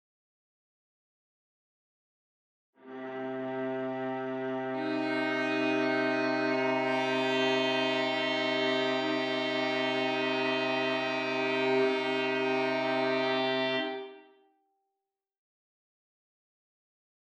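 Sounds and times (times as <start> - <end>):
minor chord: 3.4 - 14.2.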